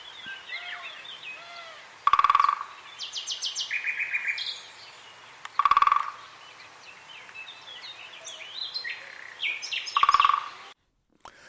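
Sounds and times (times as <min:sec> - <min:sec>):
birds chirping and singing: 0:00.0 - 0:10.8
great spotted woodpecker drumming: 0:02.0 - 0:04.3, 0:05.4 - 0:06.4, 0:09.1 - 0:10.8.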